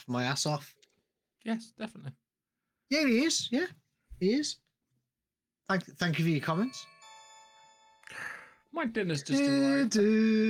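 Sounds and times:
speech: 0.0s - 0.8s, 1.4s - 2.2s, 2.9s - 4.6s, 5.7s - 7.0s, 8.1s - 10.4s
electronic doorbell chime: 6.4s - 9.0s.

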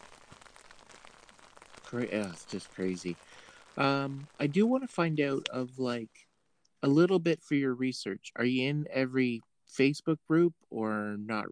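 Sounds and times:
rain drumming on the tin roof of a shelter: 0.0s - 6.3s
speech: 1.9s - 11.5s.

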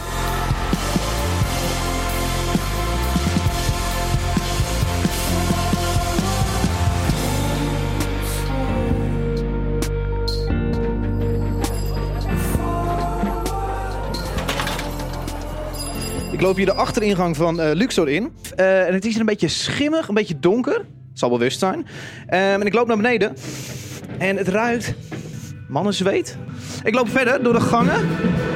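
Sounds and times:
Dutch band recording with bass, guitars or synths and beat: 0.0s - 18.5s
speech: 16.4s - 25.1s, 25.7s - 28.5s.

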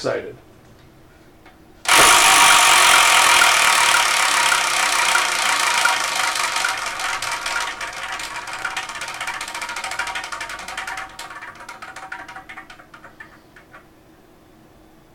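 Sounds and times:
prize wheel being spun, clicking: 1.9s - 13.8s.

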